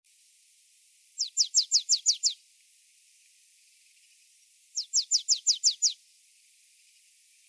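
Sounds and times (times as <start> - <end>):
marsh tit Poecile palustris calling: 1.2 - 2.4, 4.8 - 6.0.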